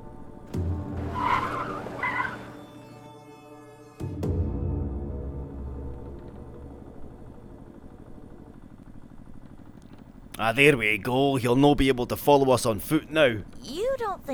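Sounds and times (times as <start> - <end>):
car engine droning as the car pulls away: 0.0 - 3.2, 4.6 - 13.6
car tires squealing in a skid: 0.9 - 2.8
speech: 10.4 - 14.3.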